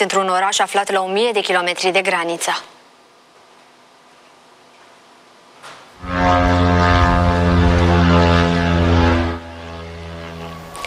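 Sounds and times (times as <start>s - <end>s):
speech: 0.0s - 2.8s
kamikaze drones launched by Ukraine flying overhead: 6.0s - 10.8s.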